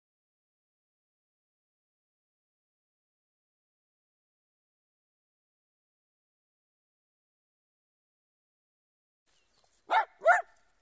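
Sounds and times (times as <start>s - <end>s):
dog barking: 9.9s - 10.6s.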